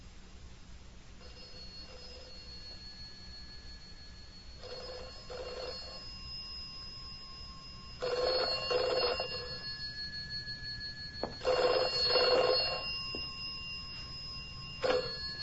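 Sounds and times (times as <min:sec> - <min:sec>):
faint hum: 0:00.0 - 0:15.4
telephone bell ringing: 0:01.2 - 0:15.4.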